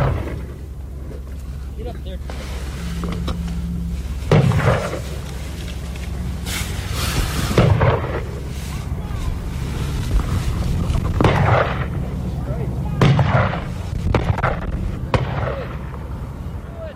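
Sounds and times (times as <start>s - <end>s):
steady rumbling background: 0.0s - 16.9s
gunshots during a bison hunt: 4.3s - 5.1s, 7.5s - 8.4s, 11.1s - 12.2s, 13.0s - 16.0s.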